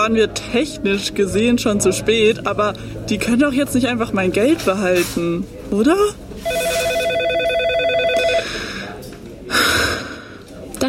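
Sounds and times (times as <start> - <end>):
speech: 0.0 - 6.6
office telephone ringing with warbling electronic tone: 6.4 - 8.6.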